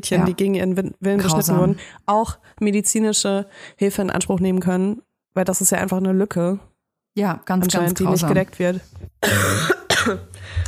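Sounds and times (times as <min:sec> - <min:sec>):
speech: 0:00.0 - 0:10.6
person coughing harshly: 0:09.2 - 0:10.6.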